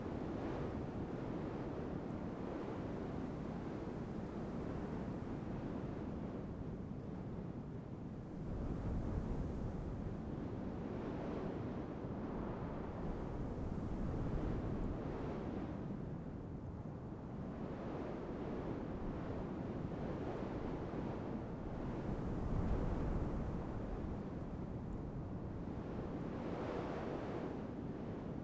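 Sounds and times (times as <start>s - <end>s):
calm wind in nature: 0.1s - 28.4s.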